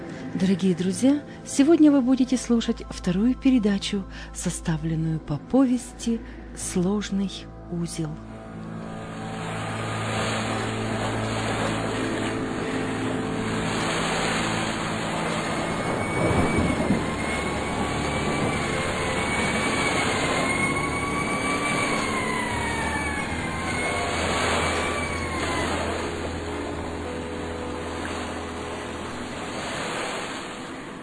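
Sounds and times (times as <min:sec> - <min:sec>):
speech: 0:00.4 - 0:08.3
storm waves crashing against coastal rocks: 0:09.1 - 0:31.0
high whistling tones: 0:14.3 - 0:27.1.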